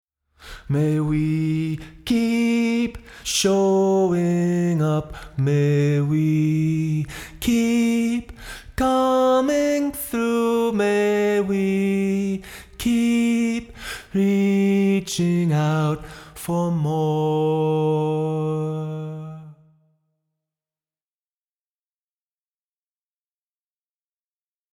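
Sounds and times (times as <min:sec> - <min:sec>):
vocals in a room: 0:00.4 - 0:19.9.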